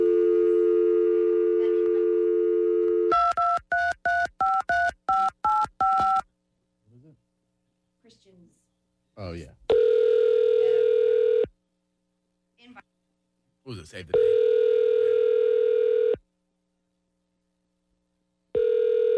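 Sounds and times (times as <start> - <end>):
telephone dial tone: 0.0 - 6.2, 9.7 - 11.5, 14.2 - 16.2, 18.6 - 19.1
speech: 13.9 - 14.4.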